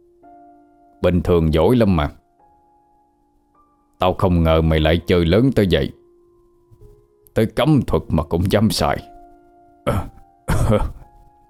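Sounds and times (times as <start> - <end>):
speech: 1.0 - 2.2, 4.0 - 6.0, 7.4 - 9.1, 9.8 - 11.0
man coughing: 9.9 - 11.1.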